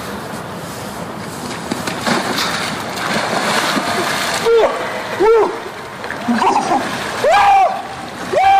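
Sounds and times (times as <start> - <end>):
big sustained splash and churning of ice-filled cold water: 0.2 - 8.5
person plunging into ice-filled cold water: 1.7 - 8.3.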